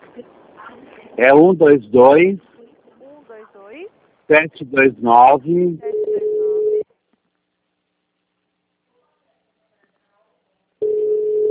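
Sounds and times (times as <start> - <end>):
speech: 1.2 - 2.5, 4.3 - 5.9
telephone line tone as a call begins: 5.9 - 6.8, 10.8 - 11.4.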